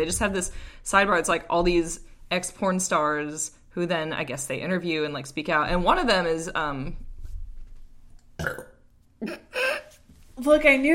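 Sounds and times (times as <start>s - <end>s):
speech: 0.0s - 7.0s, 8.4s - 9.7s, 10.4s - 10.9s
adult belching: 8.4s - 9.5s.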